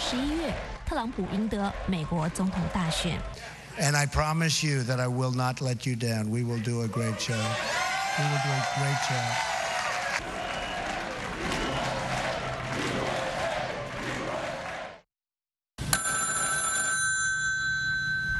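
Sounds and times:
noisy crowd cheering: 0:00.0 - 0:03.8, 0:06.6 - 0:15.0
speech: 0:00.1 - 0:09.5
applause: 0:08.0 - 0:15.0
telephone ringing with an electronic trill: 0:15.8 - 0:18.3.

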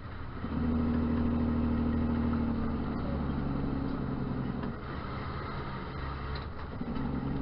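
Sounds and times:
autonomous truck engine idling and revving gently: 0:00.0 - 0:07.4.

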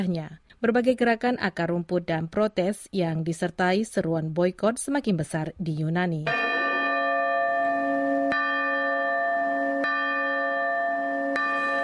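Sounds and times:
speech: 0:00.0 - 0:06.5
church bells ringing in a slow steady peal: 0:06.3 - 0:11.8.

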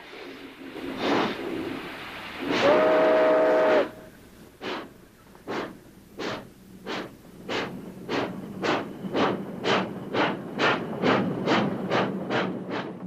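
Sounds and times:
steam freight locomotive chugging: 0:00.0 - 0:13.0
steam locomotive whistle: 0:02.4 - 0:04.2.

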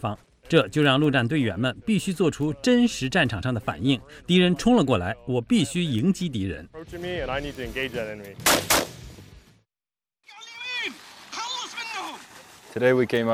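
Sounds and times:
speech: 0:00.0 - 0:08.8, 0:12.7 - 0:13.3
gunshots at moving targets in a marine training demonstration: 0:08.4 - 0:09.1.

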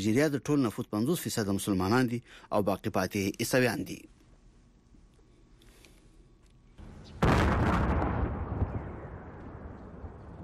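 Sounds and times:
speech: 0:00.0 - 0:04.2
bomb blast at night in Kabul: 0:07.2 - 0:10.4.

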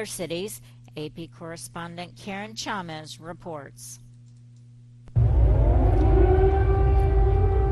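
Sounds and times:
speech: 0:00.0 - 0:04.0
brief low hum: 0:04.4 - 0:07.7
air raid siren wailing in Kyiv Ukraine during Russian airstrikes: 0:05.2 - 0:07.7
deep rumbling background: 0:05.2 - 0:07.7.

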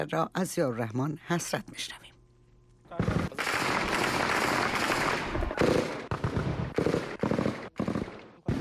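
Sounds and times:
speech: 0:00.0 - 0:02.1
celebratory rapid automatic gunfire fired into the air: 0:03.0 - 0:08.5.

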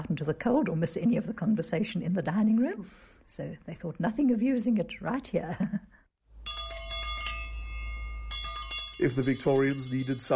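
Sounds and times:
speech: 0:00.0 - 0:06.0, 0:09.0 - 0:10.3
small metallic hand bell rung to summon a servant: 0:06.4 - 0:10.3.

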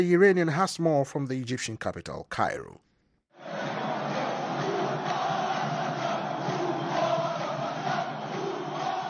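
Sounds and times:
speech: 0:00.0 - 0:02.9
protest crowd shouting and chanting in the street: 0:03.3 - 0:09.0.

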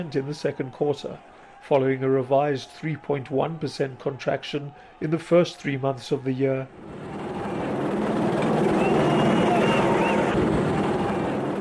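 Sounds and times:
speech: 0:00.0 - 0:07.2
police helicopters hovering overhead: 0:06.7 - 0:11.5.

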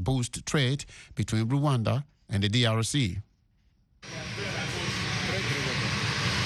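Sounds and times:
speech: 0:00.0 - 0:03.3
Boeing 737-800 jet airliner engines roaring: 0:04.0 - 0:06.4.

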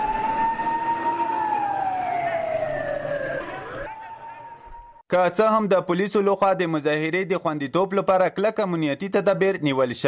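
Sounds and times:
ambulance siren wailing after an explosion: 0:00.0 - 0:05.0
speech: 0:05.1 - 0:10.0.

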